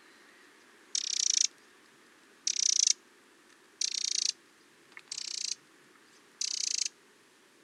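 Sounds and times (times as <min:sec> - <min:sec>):
Eurasian wren Troglodytes troglodytes churring in scratchy rattles: 0:00.9 - 0:01.5, 0:02.4 - 0:03.0, 0:03.8 - 0:04.4, 0:05.0 - 0:05.6, 0:06.4 - 0:06.9.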